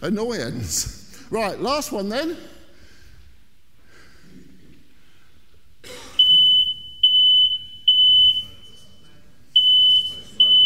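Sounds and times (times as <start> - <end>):
speech: 0.0 - 2.6
faint noise: 0.0 - 10.6
smoke alarm beeping: 6.2 - 10.6.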